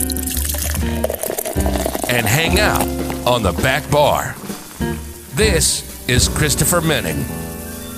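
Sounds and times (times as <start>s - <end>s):
drink pouring into a glass: 0.0s - 5.4s
speech: 2.2s - 7.5s.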